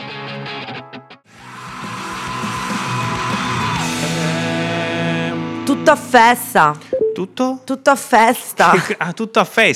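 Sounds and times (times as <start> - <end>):
heavy distorted guitars: 1.4 - 6.9
loud dense rock song: 1.8 - 6.4
speech: 5.8 - 9.7
laughter: 8.7 - 9.0.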